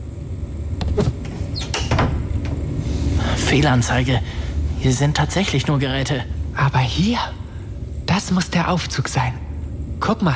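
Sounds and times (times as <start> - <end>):
low steady rumble: 0.0 - 10.3
cupboard doors being pulled open: 0.8 - 2.6
speech: 3.5 - 7.4, 8.2 - 9.4, 10.0 - 10.3.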